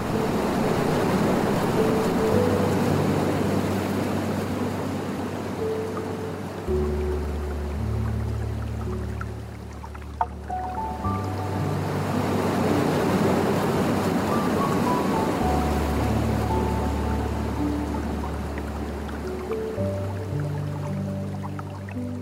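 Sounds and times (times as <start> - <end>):
Japanese water stream rushing and trickling: 0.0 - 22.2
soft relaxing piano playing slow sustained notes: 0.0 - 22.2.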